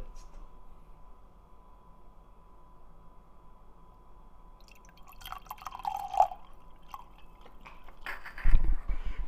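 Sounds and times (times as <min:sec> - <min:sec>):
wine pouring into a glass: 0:04.6 - 0:08.0.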